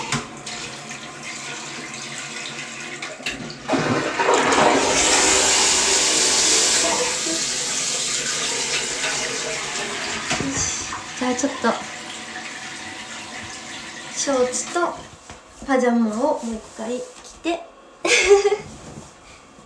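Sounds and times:
toilet flushing with rushing gurgling water: 0.0 - 15.2
speech: 11.4 - 11.9, 14.3 - 15.0, 15.7 - 18.7.

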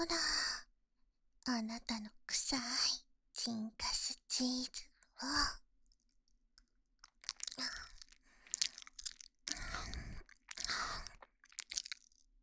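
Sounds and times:
speech: 0.0 - 0.3, 1.5 - 5.6
crisp crunchy wet chewing: 7.0 - 12.2.

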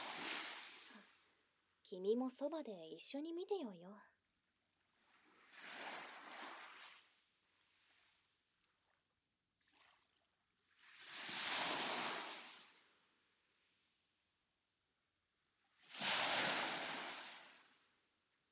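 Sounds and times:
small waves washing onto a shore: 0.0 - 1.1, 5.2 - 7.1, 10.7 - 12.8, 15.9 - 17.7
speech: 1.9 - 4.1.

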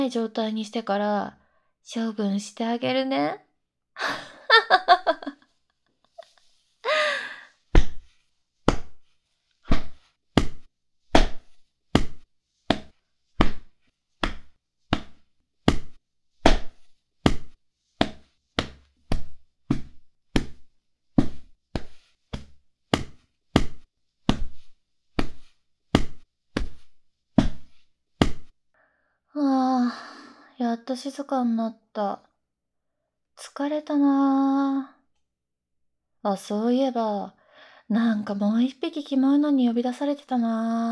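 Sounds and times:
speech: 0.0 - 3.4, 4.0 - 5.0, 30.6 - 32.3, 33.4 - 35.0, 36.2 - 40.9
person gasping: 6.8 - 7.6
punches to the stomach: 7.7 - 9.1, 9.7 - 20.6, 21.2 - 28.5.

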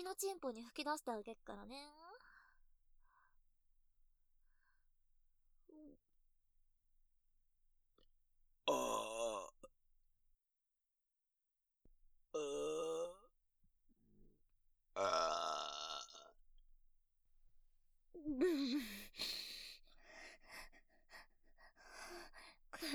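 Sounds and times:
speech: 0.0 - 2.2, 5.7 - 6.0, 8.7 - 9.6, 12.4 - 13.2, 15.0 - 15.4, 18.3 - 19.3
loud rumbling belches: 8.7 - 9.7, 12.4 - 13.3, 15.0 - 16.3.

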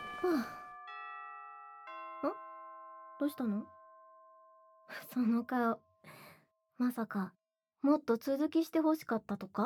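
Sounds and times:
person sighing: 0.0 - 0.6
school chime bell tones: 0.0 - 5.7
speech: 0.2 - 0.6, 2.2 - 2.4, 3.2 - 3.8, 4.9 - 6.2, 6.8 - 9.6.

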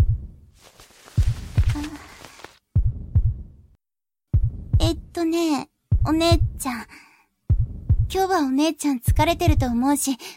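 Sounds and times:
heartbeat thumping in low double beats: 0.0 - 0.4, 1.2 - 1.9, 2.7 - 3.6, 4.3 - 5.2, 5.9 - 6.7, 7.5 - 8.3, 9.0 - 9.8
speech: 4.9 - 7.0, 8.1 - 10.3.

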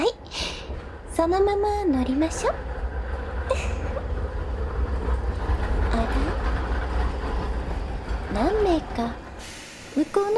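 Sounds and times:
single-car one-man electric train pulling into a station: 0.0 - 10.3
speech: 1.2 - 2.7, 8.3 - 9.2, 10.0 - 10.3
high hiss: 9.4 - 10.3.

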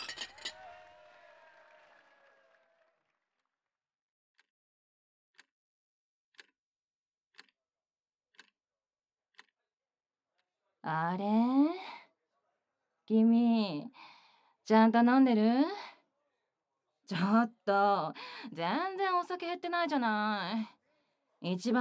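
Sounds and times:
glasses clinking in a toast at a work drinking party: 0.0 - 0.7
speech: 10.9 - 11.8, 13.1 - 14.1, 14.7 - 15.9, 17.1 - 20.8, 21.4 - 21.8.

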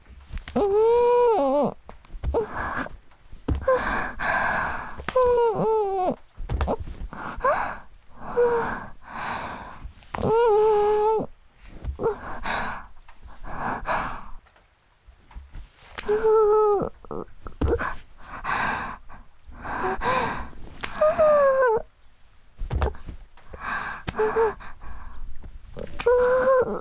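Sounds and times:
bed creaking: 0.0 - 14.4, 15.2 - 26.7
rain: 13.6 - 16.0.

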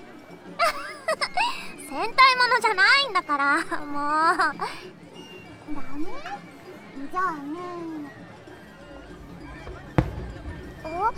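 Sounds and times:
low murmur: 0.0 - 11.1
laughter: 0.6 - 1.9
speech: 2.0 - 5.0, 7.1 - 8.2, 10.8 - 11.1
firework boom: 8.8 - 11.1.

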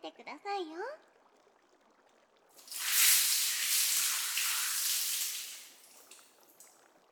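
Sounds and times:
speech: 0.0 - 1.1
water poured over a person's head to rinse at a hot spring: 2.6 - 6.7.

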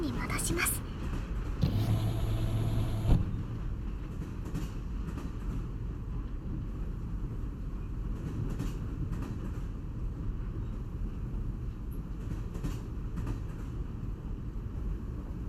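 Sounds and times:
train rolling along heard from inside as low rumble: 0.0 - 15.4
speech: 0.5 - 0.9
faint hum inside a train: 1.6 - 3.5.

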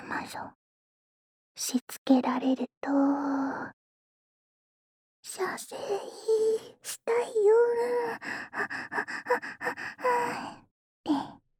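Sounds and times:
speech: 0.3 - 0.6, 1.6 - 3.8, 5.3 - 11.4
heavy panting breaths: 8.1 - 10.6.

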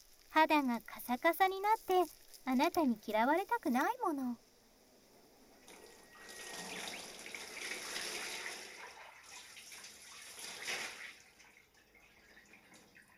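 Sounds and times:
speech: 0.4 - 4.4
water splashing and swishing as a body is washed with a towel in a hot bath: 5.6 - 13.1.

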